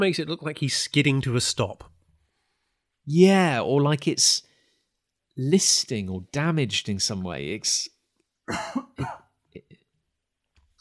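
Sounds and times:
speech: 0.0 - 2.0, 3.1 - 4.5, 5.4 - 9.2
person coughing harshly: 8.5 - 9.8.

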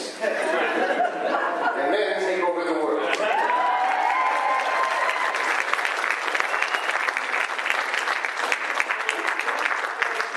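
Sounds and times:
laughter: 0.2 - 2.4, 2.9 - 3.7
crowd applauding: 3.1 - 10.3.

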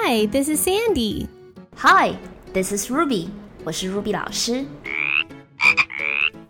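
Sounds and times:
speech: 0.1 - 4.9
small frog croaking with trills and chirps: 4.8 - 6.4.

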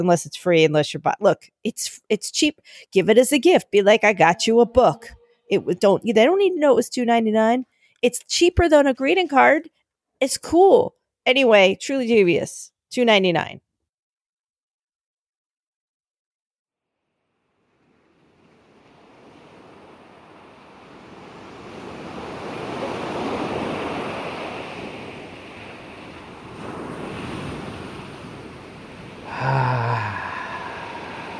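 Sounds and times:
speech: 0.0 - 13.6
water waves washing in on a summer day: 17.2 - 31.3.

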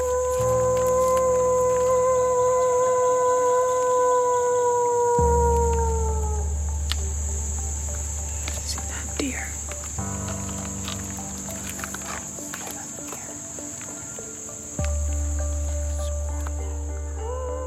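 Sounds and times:
people imitating wolves howling outdoors at a wolf center: 0.0 - 7.1
low rumble: 0.0 - 13.8, 14.7 - 17.6
chorus of chirping crickets outdoors: 0.0 - 17.6.

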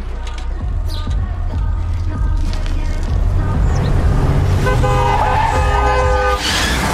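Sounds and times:
road rumble: 0.0 - 6.9
loud car engine noise: 2.5 - 6.9
car horn honking: 4.6 - 6.6.

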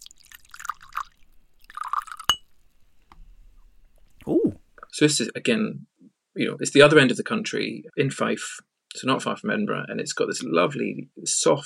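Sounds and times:
whisky glugging into a glass: 0.0 - 2.4
sharp glassy clink: 1.6 - 2.5
speech: 5.0 - 11.6.

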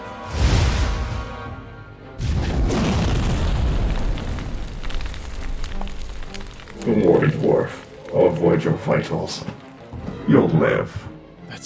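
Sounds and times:
red magic beam firing from a fingertip and exploding into a chest: 2.2 - 5.8
speech: 6.9 - 9.6, 10.3 - 11.6.

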